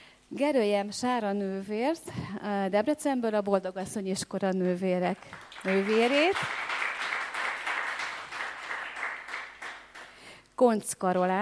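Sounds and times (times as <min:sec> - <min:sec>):
speech: 0:00.3 - 0:06.6, 0:10.6 - 0:11.4
audience applause for a guest being introduced: 0:05.3 - 0:10.1.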